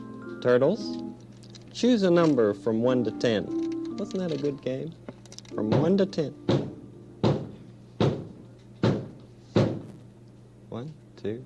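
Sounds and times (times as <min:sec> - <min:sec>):
speech: 0:00.4 - 0:01.1, 0:01.8 - 0:06.7, 0:10.8 - 0:11.4
heavy knocks on a door: 0:05.7 - 0:09.9.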